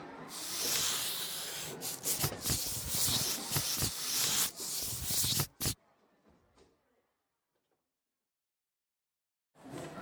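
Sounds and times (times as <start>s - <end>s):
colored pencils scratching across paper while drawing: 0.3s - 5.8s.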